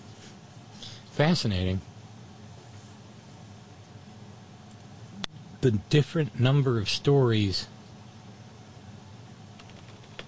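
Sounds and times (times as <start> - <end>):
speech: 1.2 - 1.9, 5.6 - 7.7
quick keystrokes on a computer keyboard: 9.6 - 10.2.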